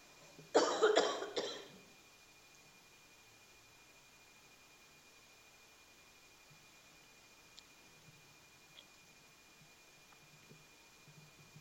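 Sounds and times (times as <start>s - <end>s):
harsh coughs: 0.5s - 1.8s.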